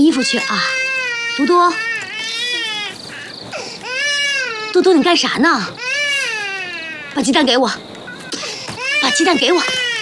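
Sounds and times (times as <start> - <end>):
speech: 0.0 - 2.5, 4.7 - 5.8, 7.1 - 7.9, 9.2 - 9.8
baby crying in high wavering wails: 0.1 - 10.0.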